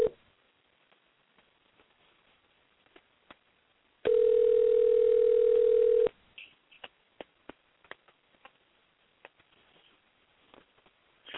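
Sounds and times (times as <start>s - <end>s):
telephone ringback tone as a call goes out to a phone-in caller: 4.1s - 6.1s.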